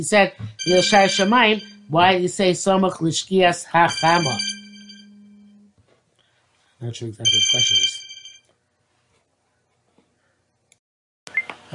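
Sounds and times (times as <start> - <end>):
speech: 0.0 - 4.6, 6.8 - 8.1
phone ringing: 0.6 - 2.2, 3.8 - 5.6, 7.3 - 8.4.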